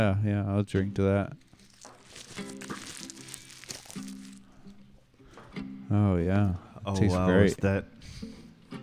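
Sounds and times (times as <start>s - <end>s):
speech: 0.0s - 1.5s, 5.9s - 8.2s
paper being crumpled by hand: 1.4s - 4.7s.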